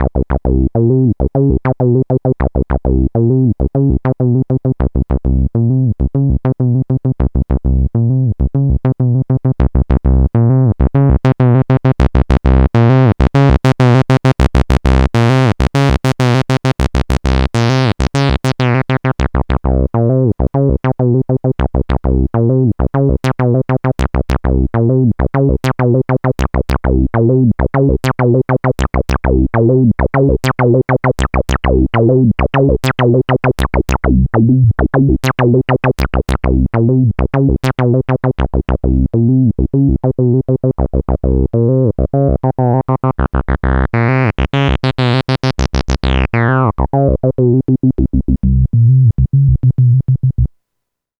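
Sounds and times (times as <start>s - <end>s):
analog synthesizer with ladder filter imitating a 303 bassline: 0.0s - 50.5s.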